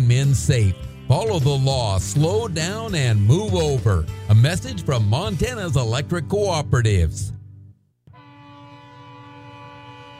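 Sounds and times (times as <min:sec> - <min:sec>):
speech: 0:00.1 - 0:07.4
freight train horn blasting one steady chord-like note: 0:08.1 - 0:10.1.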